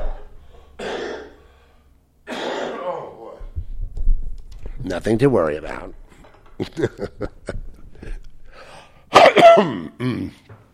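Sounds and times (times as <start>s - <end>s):
harsh hacking cough: 0.0s - 1.4s, 2.2s - 3.4s, 9.1s - 10.5s
speech: 4.8s - 6.0s, 6.6s - 7.7s, 9.6s - 10.6s
laughter: 6.6s - 8.3s.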